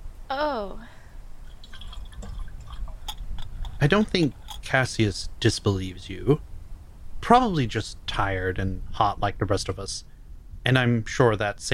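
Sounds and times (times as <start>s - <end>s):
speech: 0.3s - 0.9s, 3.8s - 6.5s, 7.3s - 11.7s
small bright splashes and drips: 1.4s - 4.7s
water sloshing and trickling: 1.4s - 4.7s
steady low rumble: 1.6s - 11.7s.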